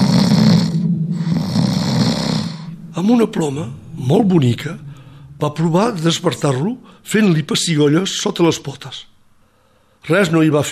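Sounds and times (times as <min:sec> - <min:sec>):
voice imitating the rumbling snore of a dragon: 0:00.0 - 0:02.7
speech: 0:03.0 - 0:09.1, 0:10.0 - 0:10.7.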